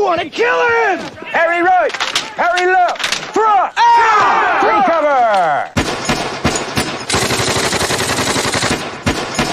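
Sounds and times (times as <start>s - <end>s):
speech: 0.1s - 5.7s
single gunshots during shooting practice: 5.8s - 7.2s
automatic gunfire during shooting practice: 5.8s - 9.5s.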